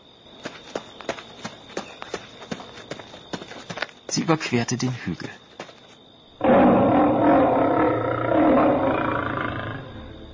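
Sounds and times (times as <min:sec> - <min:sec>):
speech: 0:04.1 - 0:05.4
tiger roaring: 0:06.4 - 0:10.1.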